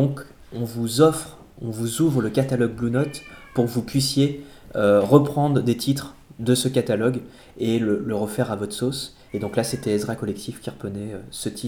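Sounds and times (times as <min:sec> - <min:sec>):
speech: 0:00.0 - 0:11.6
domestic cat meowing: 0:02.7 - 0:04.0, 0:09.1 - 0:10.2.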